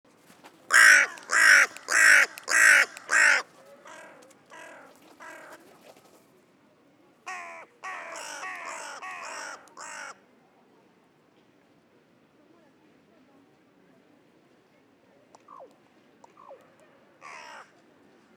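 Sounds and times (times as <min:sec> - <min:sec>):
Carrion crow Corvus corone cawing: 0:00.7 - 0:05.6, 0:07.3 - 0:10.2, 0:17.2 - 0:17.7.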